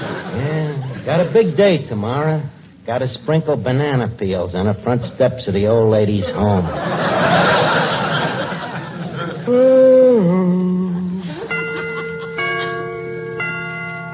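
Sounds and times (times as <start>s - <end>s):
people chatting and chuckling: 0.0s - 1.7s, 6.2s - 13.0s
speech: 1.0s - 8.0s, 9.5s - 9.8s
clock chiming the hour: 11.4s - 14.1s.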